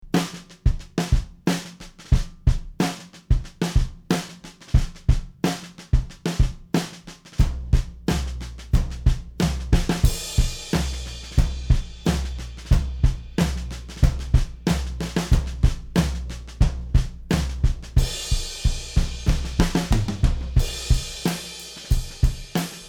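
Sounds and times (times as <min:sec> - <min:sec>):
raw distorted snare drum: 0:00.2 - 0:22.8.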